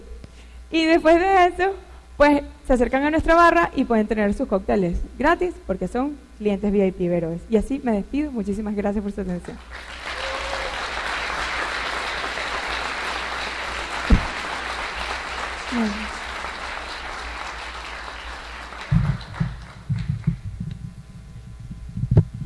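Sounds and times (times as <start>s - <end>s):
speech: 0.7s - 10.0s, 15.8s - 16.2s
audience applause at a spirits and distillates congress: 9.6s - 20.4s.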